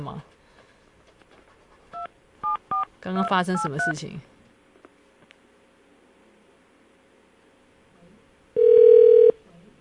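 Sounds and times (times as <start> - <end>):
speech: 0.0 - 0.4, 3.0 - 4.3
phone line ringing tone electronic beep: 8.6 - 9.4.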